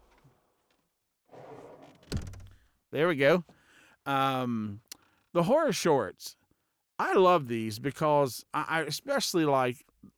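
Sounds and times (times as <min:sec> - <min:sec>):
door swinging shut with a rustling slide and a solid thunk: 0:01.4 - 0:02.6
speech: 0:02.9 - 0:06.4, 0:07.0 - 0:10.1.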